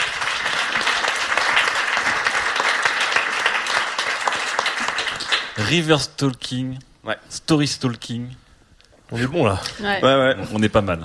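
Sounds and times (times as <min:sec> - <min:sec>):
crowd applauding a speaker after a talk: 0:00.0 - 0:05.9
speech: 0:05.6 - 0:08.4, 0:09.1 - 0:11.0.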